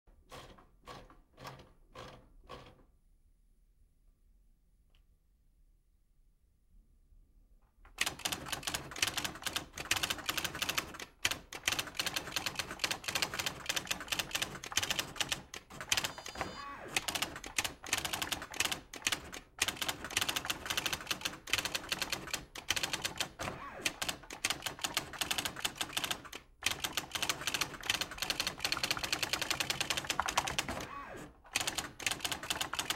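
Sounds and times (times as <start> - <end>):
old typewriter: 8.0 - 32.9.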